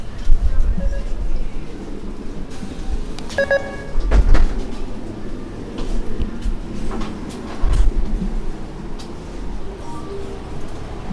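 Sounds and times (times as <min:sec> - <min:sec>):
metro sliding doors closing with heavy thuds: 0:00.0 - 0:11.1
metro train ride rumble in Rennes: 0:00.0 - 0:11.1
brief electronic chime: 0:03.4 - 0:04.0.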